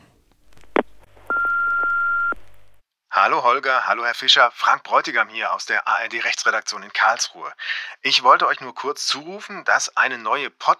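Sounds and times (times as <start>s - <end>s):
answering machine beep before a message: 1.3s - 2.4s
speech: 3.3s - 10.7s.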